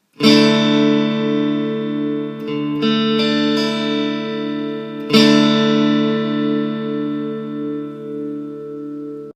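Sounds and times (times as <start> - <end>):
Dsus2 guitar chord: 0.0 - 9.3.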